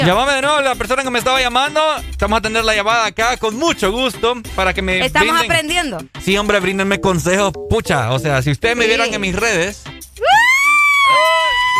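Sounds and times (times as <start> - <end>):
speech: 0.0 - 10.4
person screaming: 10.2 - 11.7.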